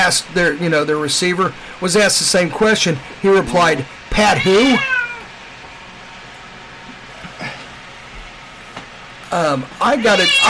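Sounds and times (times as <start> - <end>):
speech: 0.1 - 5.0, 9.4 - 10.4
cat meowing: 4.3 - 5.3, 9.8 - 10.4.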